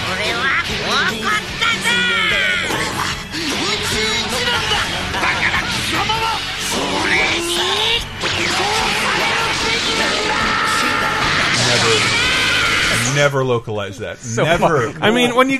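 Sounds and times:
laughter: 0.0s - 7.6s, 14.2s - 15.5s
person yelling and screaming in an anime power-up: 0.2s - 2.9s, 5.5s - 13.2s
speech: 13.2s - 15.5s.

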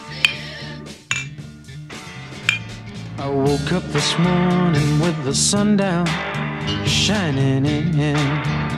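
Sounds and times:
glasses clinking in a toast: 0.0s - 0.4s, 1.1s - 1.4s, 2.4s - 3.0s
speech: 3.2s - 8.6s.

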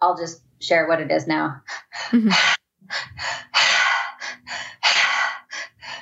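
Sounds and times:
speech: 0.1s - 3.8s
meditative breath work with deep inhales and forceful exhales: 1.6s - 6.0s.

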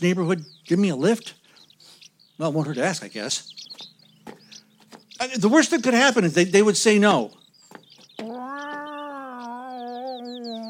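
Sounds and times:
speech: 0.0s - 1.4s, 2.4s - 3.9s, 5.2s - 7.4s
cat meowing: 8.2s - 10.6s.

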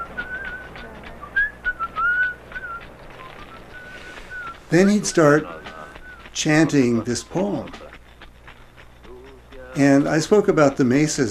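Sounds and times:
healer whistling a melodic tune in a healing ritual: 0.0s - 7.8s
speech: 4.7s - 5.6s, 6.4s - 7.9s, 9.8s - 11.2s.

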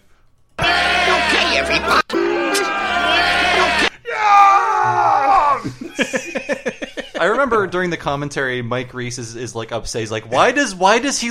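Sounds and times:
several people yelling and shouting: 0.6s - 5.7s
laughter: 5.5s - 7.7s
speech: 7.4s - 11.2s.

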